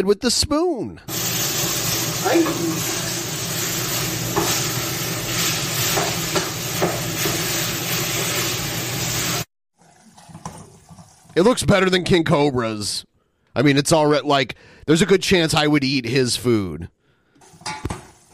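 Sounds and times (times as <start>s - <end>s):
speech: 0.0s - 1.4s, 2.2s - 3.0s, 11.4s - 17.0s
beef sizzling in a frying pan: 1.1s - 9.5s.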